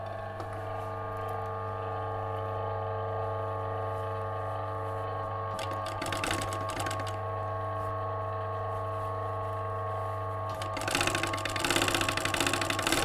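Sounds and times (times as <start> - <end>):
blind hem stitch sewing machine motor humming: 0.0 - 8.8, 9.8 - 13.0
sewing machine clatter sewing a blind hem stitch: 5.6 - 7.2, 10.5 - 13.0.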